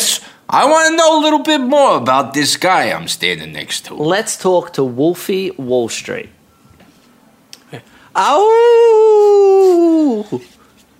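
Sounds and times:
speech: 0:00.5 - 0:06.4, 0:07.7 - 0:10.6
person imitating a wolf howling: 0:08.2 - 0:10.4.

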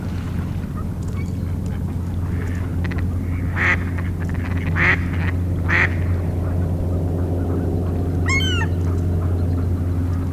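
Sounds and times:
mallard ducks quacking on a lake starting to ice over: 0:00.0 - 0:10.3
steady low rumbling drone: 0:00.0 - 0:10.3
brief higher rapidly wavering bird call: 0:06.9 - 0:09.8.

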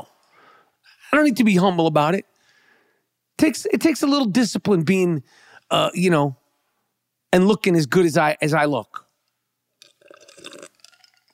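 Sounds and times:
speech: 0:01.1 - 0:02.3, 0:03.4 - 0:06.4, 0:07.3 - 0:09.0
person sipping water: 0:09.7 - 0:11.3
gulp: 0:09.8 - 0:11.3.

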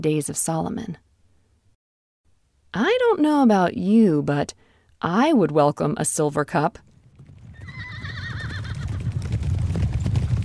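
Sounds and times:
speech: 0:00.0 - 0:01.0, 0:02.8 - 0:06.9
horse whinnying: 0:07.2 - 0:09.4.

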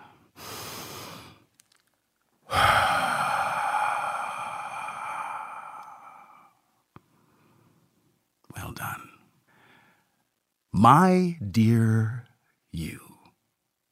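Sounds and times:
person taking a deep breath: 0:00.0 - 0:01.4, 0:02.5 - 0:07.7
speech: 0:10.8 - 0:13.0.

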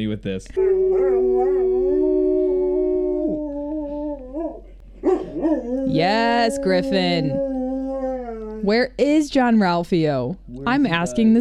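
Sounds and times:
speech: 0:00.0 - 0:01.6, 0:05.0 - 0:07.5, 0:08.6 - 0:11.3
dog howling and yelping: 0:00.6 - 0:08.7.

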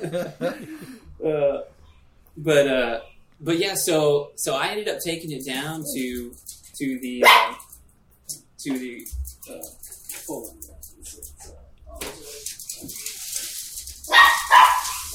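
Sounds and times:
laughter: 0:00.0 - 0:01.0
speech: 0:00.1 - 0:01.5, 0:02.4 - 0:07.6, 0:08.3 - 0:10.7
dog barking: 0:07.2 - 0:07.7, 0:14.1 - 0:15.1.

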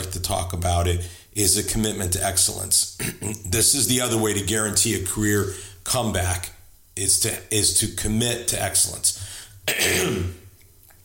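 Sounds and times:
speech: 0:00.3 - 0:10.4
throat clearing: 0:03.0 - 0:03.5, 0:09.7 - 0:10.5.

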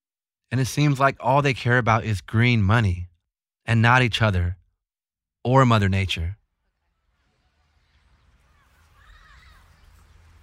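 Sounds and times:
speech: 0:00.5 - 0:03.1, 0:03.7 - 0:04.6, 0:05.4 - 0:06.4
parrots squawking as they come to roost: 0:08.3 - 0:10.4.

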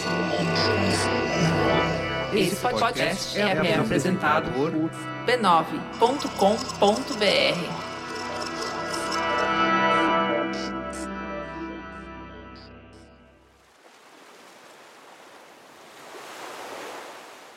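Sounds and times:
music: 0:00.0 - 0:13.5
speech: 0:02.3 - 0:07.8
ocean waves breaking on sand: 0:13.6 - 0:17.5.

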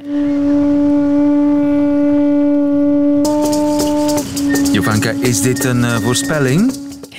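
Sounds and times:
conch shell blown by shamans in long droning note: 0:00.0 - 0:07.1
bright rattling shaking sound: 0:03.3 - 0:07.1
speech: 0:04.8 - 0:06.8.

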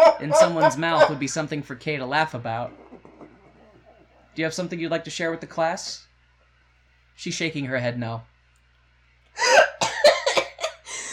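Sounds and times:
speech: 0:00.2 - 0:03.1, 0:04.4 - 0:06.1, 0:07.2 - 0:08.3, 0:09.4 - 0:09.7
woman coughing while laughing: 0:09.4 - 0:11.1.

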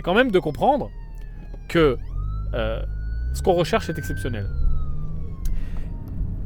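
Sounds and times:
speech: 0:00.0 - 0:01.0, 0:01.7 - 0:04.6
ambulance siren wailing with a slowly falling tone: 0:00.0 - 0:06.4
steady low rumble of street traffic: 0:00.0 - 0:06.4.

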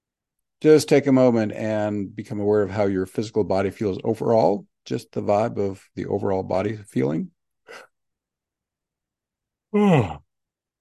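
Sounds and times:
speech: 0:00.6 - 0:07.9, 0:09.7 - 0:10.2
person yawning: 0:09.7 - 0:10.3.

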